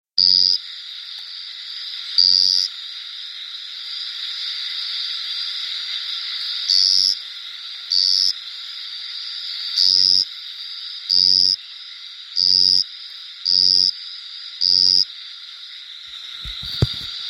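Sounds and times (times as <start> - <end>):
Allophryne ruthveni frog: 0.2 - 17.2.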